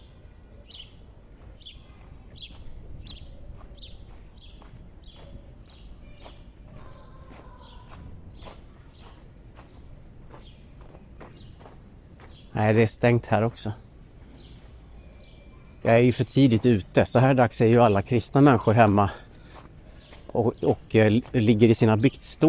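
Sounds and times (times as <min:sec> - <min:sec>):
bird calling in short repeated chirps: 0:00.0 - 0:22.4
outdoor noise: 0:00.0 - 0:22.4
crunchy footsteps: 0:01.3 - 0:12.6, 0:18.7 - 0:22.2
speech: 0:12.6 - 0:13.8, 0:15.8 - 0:19.2, 0:20.4 - 0:22.4.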